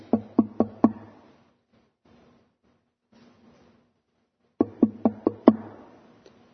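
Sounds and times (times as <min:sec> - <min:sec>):
knocking on a door: 0:00.1 - 0:01.0, 0:04.6 - 0:05.8.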